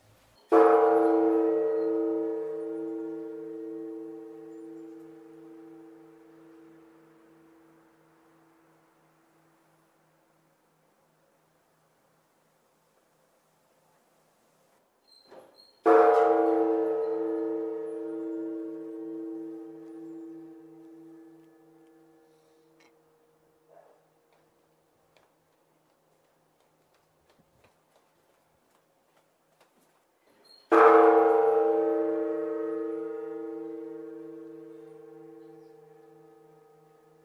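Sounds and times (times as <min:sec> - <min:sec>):
large Buddhist temple bell tolling: 0:00.5 - 0:08.1, 0:15.9 - 0:23.6, 0:30.7 - 0:37.2.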